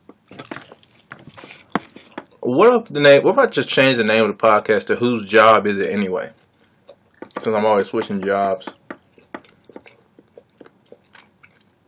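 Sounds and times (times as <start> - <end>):
chewing a quesadilla: 0.0 - 2.4, 5.8 - 11.8
wet mouth sounds: 0.0 - 2.4, 6.4 - 7.5, 8.7 - 11.8
speech: 2.5 - 6.4, 7.4 - 8.8.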